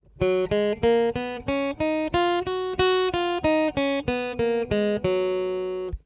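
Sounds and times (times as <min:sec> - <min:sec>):
guitar playing an F major scale: 0:00.0 - 0:06.0.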